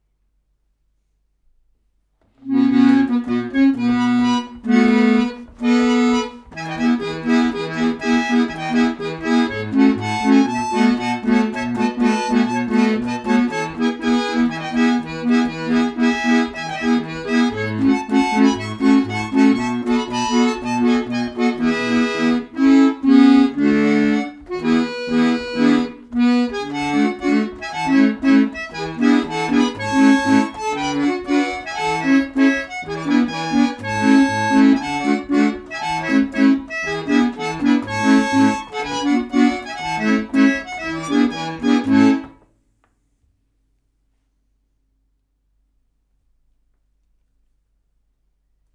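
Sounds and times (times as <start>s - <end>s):
organette playing: 2.4s - 42.5s.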